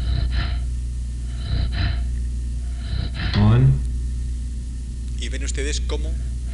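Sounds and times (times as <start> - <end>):
chimpanzee rhythmic breathing: 0.0 - 3.6, 6.1 - 6.5
steady low hum: 0.0 - 6.5
speech: 5.3 - 6.4.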